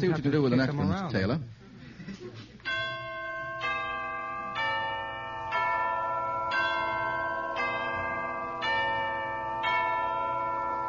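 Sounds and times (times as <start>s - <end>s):
speech: 0.0s - 2.9s
deep bells tolling: 2.7s - 10.8s.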